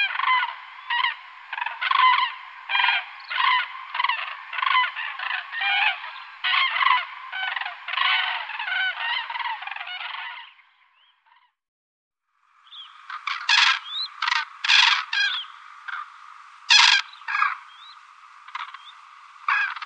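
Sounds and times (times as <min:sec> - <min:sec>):
common crane bugling and trumpeting calls: 0:00.0 - 0:10.6, 0:12.7 - 0:19.8.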